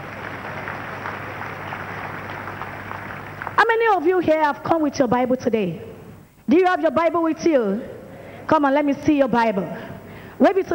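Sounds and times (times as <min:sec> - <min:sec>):
large crowd clapping: 0:00.0 - 0:04.0
speech: 0:03.6 - 0:05.9, 0:06.5 - 0:07.9, 0:08.5 - 0:09.8, 0:10.4 - 0:10.7.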